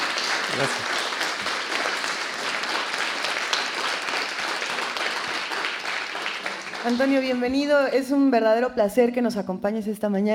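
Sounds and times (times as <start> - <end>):
audience applause for a guitarist: 0.0 - 7.5
speech: 0.5 - 1.0, 6.8 - 10.3.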